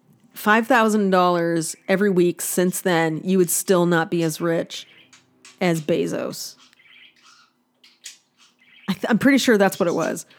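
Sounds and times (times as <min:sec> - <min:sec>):
speech: 0:00.4 - 0:05.0, 0:05.6 - 0:06.6, 0:08.9 - 0:10.3
bird chirping and warbling: 0:04.4 - 0:10.3.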